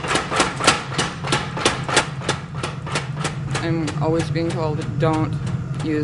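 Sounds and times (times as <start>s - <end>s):
low mechanical hum: 0.0s - 6.0s
power hammer pounding a steel blade: 0.0s - 6.0s
speech: 3.6s - 6.0s.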